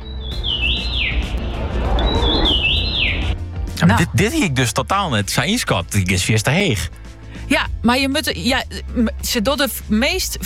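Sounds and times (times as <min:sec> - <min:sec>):
common rosefinch singing whistled phrases: 0:00.0 - 0:03.4
steady rushing outdoor background: 0:00.0 - 0:10.4
speech: 0:03.8 - 0:10.4.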